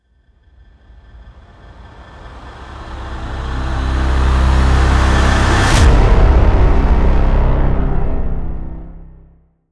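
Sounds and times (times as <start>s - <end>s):
alarming trailer impact: 2.0s - 9.4s.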